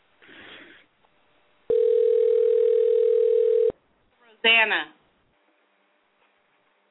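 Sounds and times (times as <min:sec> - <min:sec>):
electronic telephone ring tone: 0:01.7 - 0:03.8
speech: 0:04.4 - 0:05.0.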